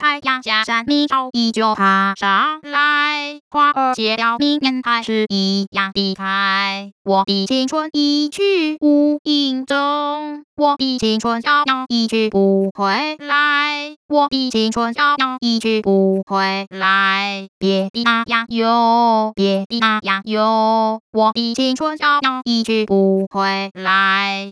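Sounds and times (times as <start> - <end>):
synthetic female singing voice without coarticulation singing in Mandarin Chinese: 0.0 - 24.5.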